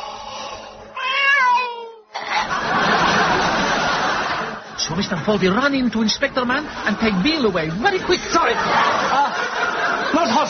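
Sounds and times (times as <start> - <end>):
ill-looking cat meowing in a backyard: 1.0 - 2.1
laughter: 2.2 - 10.4
speech: 4.9 - 9.6, 10.2 - 10.4.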